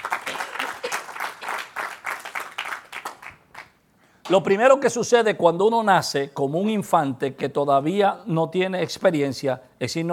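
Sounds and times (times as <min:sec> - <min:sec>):
audience applauding: 0:00.0 - 0:03.8
speech: 0:04.3 - 0:10.1.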